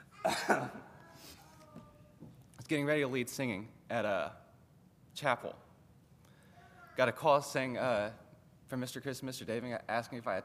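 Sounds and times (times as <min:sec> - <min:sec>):
person coughing: 0:00.0 - 0:01.0
faint room noise: 0:00.0 - 0:10.4
speech: 0:02.7 - 0:04.4, 0:05.2 - 0:05.7, 0:07.0 - 0:10.4.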